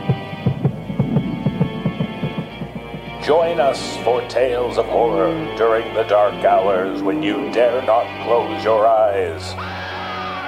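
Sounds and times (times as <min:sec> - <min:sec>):
rapid pounding heartbeat sound effect: 0:00.0 - 0:07.6
low droning hum: 0:00.0 - 0:08.6
speech: 0:03.2 - 0:09.8.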